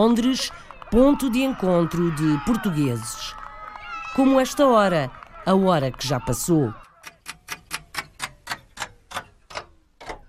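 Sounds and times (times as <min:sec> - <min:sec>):
speech: 0:00.0 - 0:03.4, 0:04.1 - 0:06.9
clock ticking: 0:07.0 - 0:10.2.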